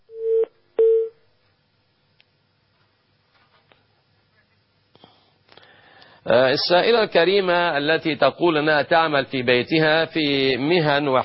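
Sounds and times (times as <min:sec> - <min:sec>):
incoming telephone call connection tone bursts: 0:00.1 - 0:01.2
speech: 0:06.3 - 0:11.2.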